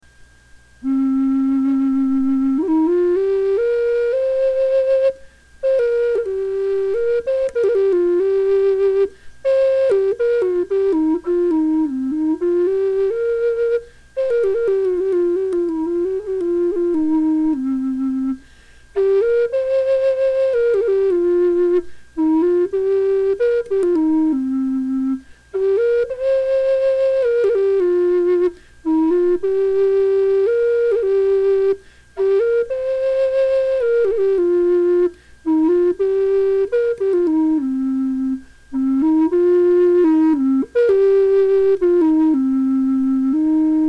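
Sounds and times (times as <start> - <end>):
deep bass flute: 0.8 - 18.4, 19.0 - 43.8.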